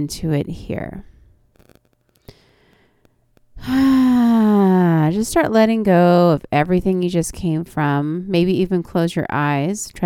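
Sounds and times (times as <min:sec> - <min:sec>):
speech: 0:00.0 - 0:01.1, 0:05.1 - 0:10.0
voiced sighing exhale during a seated forward-fold yoga stretch: 0:03.6 - 0:04.4.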